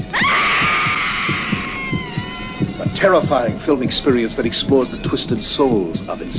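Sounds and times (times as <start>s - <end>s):
long shrill scream in a horror film trailer: 0.0s - 3.0s
low throbbing heartbeat-like pulse: 0.0s - 6.3s
speech: 3.0s - 6.3s.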